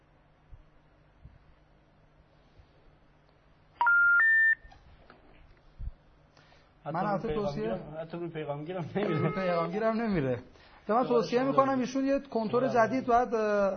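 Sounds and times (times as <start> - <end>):
faint hum: 0.0 - 13.7
electronic telephone keypad tones: 3.8 - 4.8
speech: 6.9 - 13.7.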